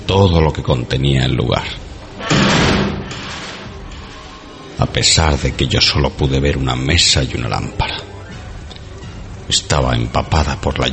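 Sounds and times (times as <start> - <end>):
speech: 0.1 - 2.5, 4.9 - 8.0, 9.5 - 10.9
heavy black door slamming shut: 2.2 - 3.8.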